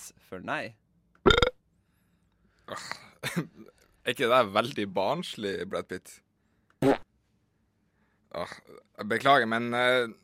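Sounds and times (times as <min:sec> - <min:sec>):
speech: 0:00.1 - 0:01.4, 0:02.7 - 0:06.2, 0:06.8 - 0:07.1, 0:08.3 - 0:10.2
human burps: 0:01.3 - 0:01.6.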